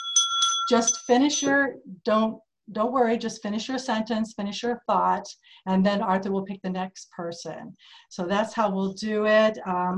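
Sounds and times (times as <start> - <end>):
hand bell ringing at a meeting: 0.0 - 1.6
speech: 0.7 - 9.9.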